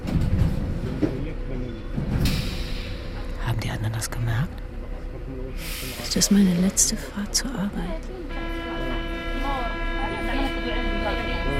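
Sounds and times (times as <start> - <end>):
train rumbling to a halt: 0.0 - 11.5
speech: 4.0 - 4.7, 5.3 - 8.4
hiss: 5.6 - 6.1.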